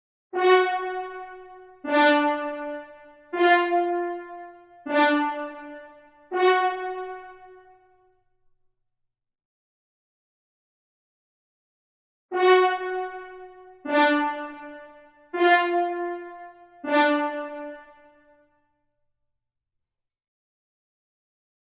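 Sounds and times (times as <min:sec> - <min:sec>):
French horn: 0:00.4 - 0:07.8, 0:12.3 - 0:18.2.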